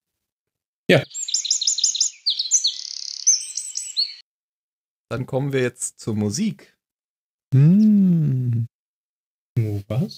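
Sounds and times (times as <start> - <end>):
speech: 0.9 - 1.2, 5.1 - 6.8, 7.5 - 8.7, 9.6 - 10.1
bird chirping: 0.9 - 4.2.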